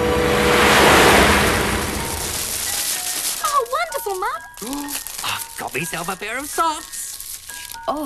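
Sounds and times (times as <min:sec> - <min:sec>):
rushing water pouring over a stream weir into swirling water: 0:00.1 - 0:03.1
speech: 0:06.0 - 0:07.0, 0:07.9 - 0:08.0.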